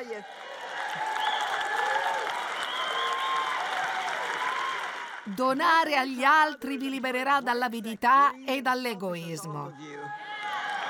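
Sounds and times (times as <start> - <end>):
crowd applauding: 0.0 - 5.8, 9.8 - 10.8
scattered whoops and whistles: 2.5 - 3.6
speech: 5.3 - 10.3.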